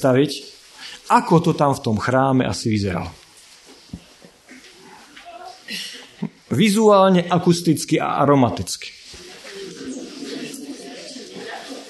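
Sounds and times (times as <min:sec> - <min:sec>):
speech: 0:00.0 - 0:03.2, 0:06.5 - 0:09.0
faint murmur of voices: 0:09.1 - 0:11.8
pigeons or doves cooing in a temple: 0:09.2 - 0:11.8.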